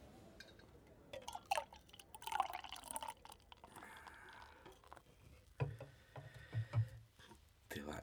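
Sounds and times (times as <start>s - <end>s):
beer pouring into a glass for a toast: 1.2s - 5.1s.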